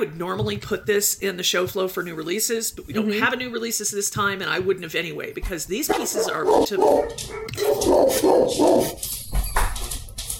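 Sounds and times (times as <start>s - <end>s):
speech: 0.0s - 9.3s
dogs barking with yaps and woofs: 5.8s - 9.0s
dog whining: 6.2s - 9.0s.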